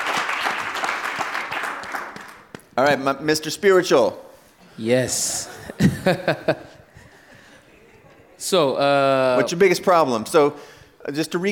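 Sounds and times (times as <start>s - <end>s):
audience applause: 0.0s - 2.6s
speech: 2.8s - 6.8s, 8.5s - 11.5s
laughter: 5.3s - 9.4s.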